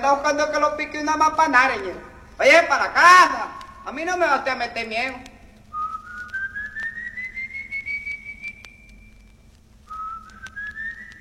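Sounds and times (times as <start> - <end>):
speech: 0.0 - 5.3
low steady hum: 0.0 - 11.1
eerie high-pitched whistling: 5.7 - 11.1.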